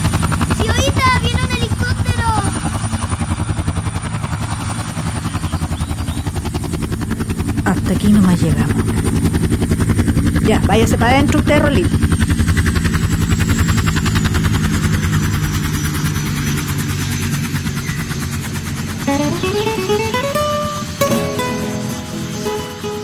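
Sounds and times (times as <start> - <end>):
large helicopter rotor blades thumping while arriving at a school: 0.0 - 23.0
speech: 7.9 - 9.6, 10.5 - 12.2
helicopter whining tones rising in pitch: 18.9 - 23.0.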